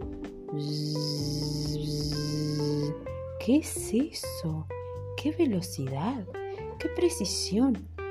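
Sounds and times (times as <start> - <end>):
speech: 0.5 - 1.4, 3.4 - 7.9
bees buzzing in a loud steady drone: 0.5 - 3.1.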